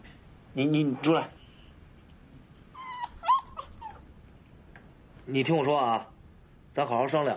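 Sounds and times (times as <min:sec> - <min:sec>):
speech: 0:00.6 - 0:01.4, 0:05.3 - 0:06.1, 0:06.8 - 0:07.3
small stray dog whimpering under a sofa: 0:02.7 - 0:04.1.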